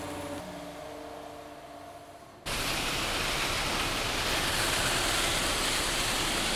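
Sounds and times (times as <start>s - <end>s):
sand and gravel rattling with water through a gravel washing plant in the Main valley: 2.5s - 6.5s.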